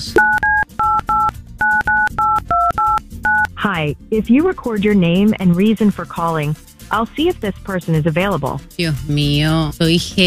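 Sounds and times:
speech: 0.0 - 0.4, 3.6 - 10.2
touch-tone beeps as a telephone number is dialed: 0.2 - 3.6.

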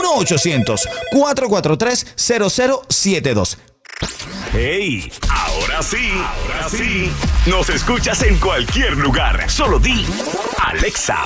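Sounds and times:
telephone ring tone after a toll-free number is dialed: 0.0 - 1.4
speech: 0.1 - 11.2.

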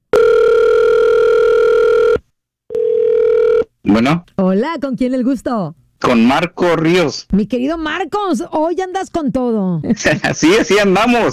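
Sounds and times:
telephone dial tone: 0.1 - 3.7
speech: 3.8 - 11.3.

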